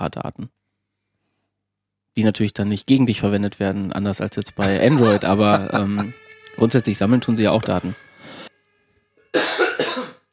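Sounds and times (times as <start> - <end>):
speech: 0.0 - 0.6, 2.2 - 8.1
laughter: 4.4 - 8.0
loud harsh coughs: 9.3 - 10.3.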